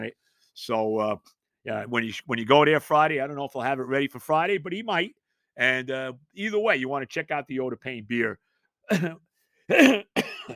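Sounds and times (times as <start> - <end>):
speech: 0.0 - 10.5
person clearing throat: 8.9 - 10.5
person coughing: 8.9 - 10.5.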